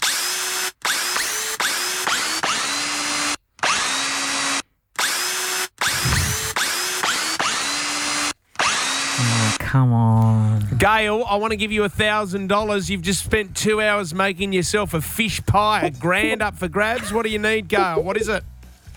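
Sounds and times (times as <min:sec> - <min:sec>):
power drill whirring a tune: 0:00.0 - 0:09.5
speech: 0:09.7 - 0:18.5
laughter: 0:15.3 - 0:18.4.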